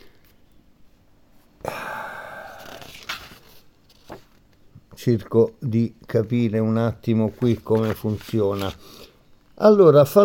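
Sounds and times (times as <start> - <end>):
paper page turning: 2.6 - 4.5, 7.3 - 8.9
speech: 5.0 - 9.0, 9.6 - 10.2.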